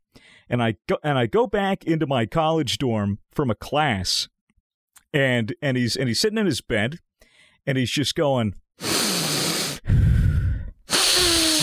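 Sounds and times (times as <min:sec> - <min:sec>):
speech: 0:00.5 - 0:04.3, 0:05.1 - 0:09.0
voice imitating heavy hissing breathing of a person on LSD: 0:08.8 - 0:11.6.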